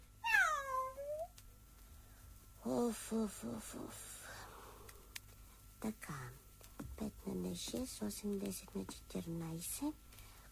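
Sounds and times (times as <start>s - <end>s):
cat meowing: 0.2s - 1.3s
speech: 2.6s - 4.2s, 5.8s - 10.0s.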